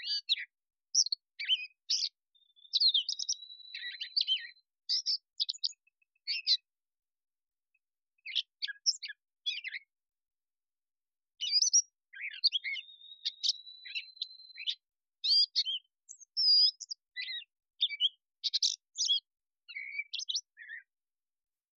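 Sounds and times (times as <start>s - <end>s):
catbird song: 0.0s - 6.8s, 7.7s - 10.1s, 11.4s - 21.2s.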